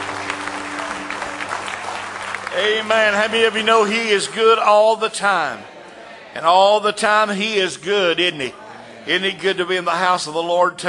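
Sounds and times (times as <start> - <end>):
church congregation clapping hands in praise during a service: 0.0 - 5.6
speech: 2.6 - 5.7, 6.4 - 10.8.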